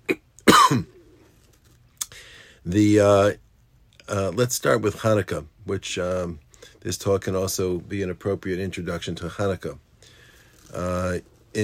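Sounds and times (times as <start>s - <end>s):
person coughing: 0.0s - 1.0s
voiced throat clearing: 0.0s - 1.0s
speech: 0.7s - 0.9s, 2.6s - 3.4s, 4.1s - 9.8s, 10.7s - 11.6s.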